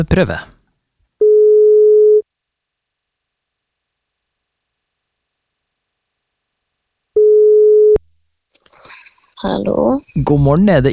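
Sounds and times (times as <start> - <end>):
speech: 0.0 - 0.5, 9.4 - 10.9
telephone ringback tone of an outgoing call: 1.2 - 2.2, 7.2 - 8.0.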